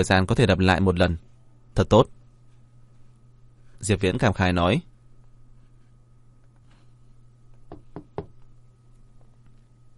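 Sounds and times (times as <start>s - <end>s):
speech: 0.0s - 2.2s, 3.8s - 4.9s
steady low hum: 0.0s - 9.9s
faint knocking on a door from outside: 7.7s - 8.4s.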